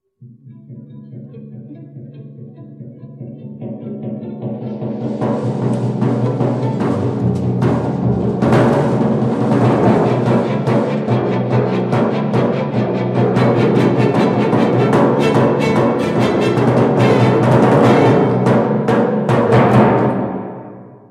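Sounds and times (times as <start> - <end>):
timpani: 4.6 - 21.0.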